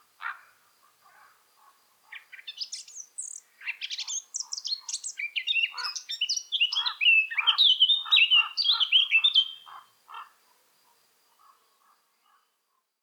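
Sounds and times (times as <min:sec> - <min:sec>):
Eurasian blackcap Sylvia atricapilla song: 0:02.3 - 0:09.6.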